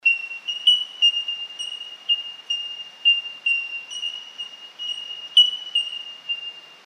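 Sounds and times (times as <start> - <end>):
bellbird calling: 0.0 - 6.8.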